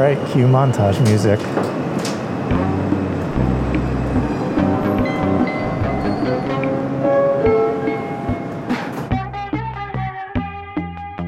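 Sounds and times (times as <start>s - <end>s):
speech: 0.0s - 2.6s
subway train rumbling with metallic whining tones: 0.0s - 9.4s
run of clear pitched notes: 2.5s - 10.0s.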